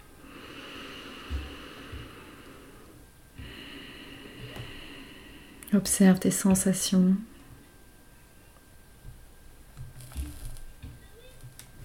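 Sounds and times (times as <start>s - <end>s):
slow breathing in and out during a yoga breathing exercise: 0.0s - 5.7s
speech: 5.7s - 7.3s.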